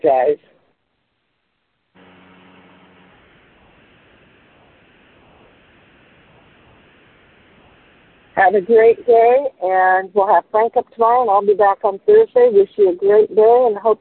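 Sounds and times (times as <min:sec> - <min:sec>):
speech: 0:00.0 - 0:00.6, 0:08.4 - 0:13.9
loud dense static on the line: 0:00.0 - 0:13.9
quiet hiss: 0:00.0 - 0:13.9
hum-like tone: 0:01.9 - 0:11.8.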